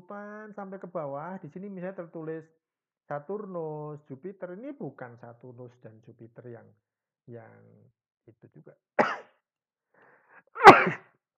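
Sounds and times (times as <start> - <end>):
speech: 0.1 - 9.3
person sneezing: 10.6 - 11.0.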